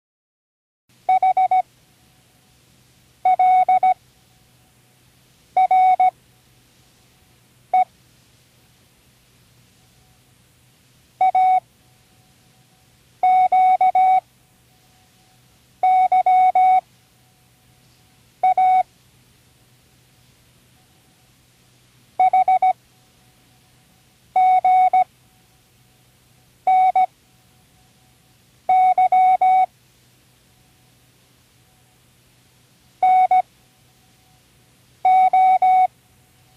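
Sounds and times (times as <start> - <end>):
morse code signal: 1.1 - 1.6, 3.2 - 4.0, 5.6 - 6.2, 11.2 - 11.7, 13.2 - 14.3, 15.2 - 16.9, 18.4 - 18.9, 22.2 - 22.8, 24.4 - 25.1, 26.7 - 27.1, 28.7 - 29.7, 33.0 - 33.5, 35.0 - 35.9.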